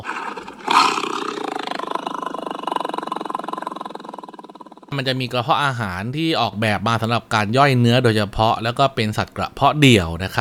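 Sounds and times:
big cat roaring, tiger or lion: 0.0s - 4.9s
speech: 4.9s - 10.3s.

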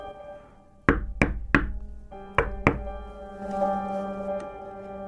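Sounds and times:
sharp knocks on a door: 0.9s - 3.1s
steady low hum: 0.9s - 4.4s.

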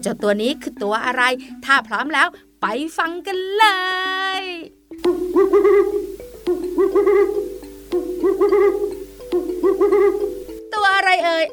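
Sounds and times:
speech: 0.0s - 6.1s, 11.1s - 11.5s
owl hooting: 5.0s - 10.6s.

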